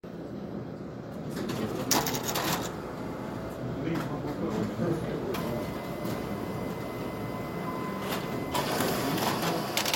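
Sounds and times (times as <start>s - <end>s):
printer: 0.5s - 9.9s.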